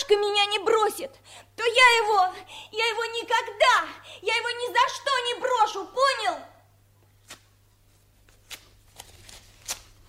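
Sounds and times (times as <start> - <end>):
speech: 0.1 - 6.5
paper tearing: 8.3 - 10.0.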